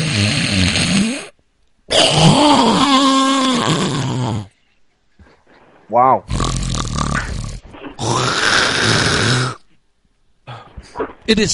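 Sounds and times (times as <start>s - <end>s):
person loudly imitating a man's snoring: 0.0s - 1.3s, 1.9s - 4.5s, 6.3s - 9.6s
speech: 5.9s - 6.6s, 11.3s - 11.5s.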